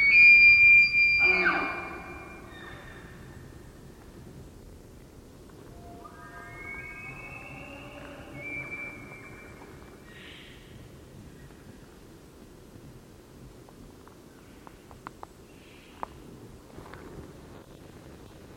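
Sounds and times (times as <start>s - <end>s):
Roosevelt elk male bugling in forest glade: 0.0s - 2.9s, 5.8s - 9.8s
background hiss: 0.0s - 18.5s.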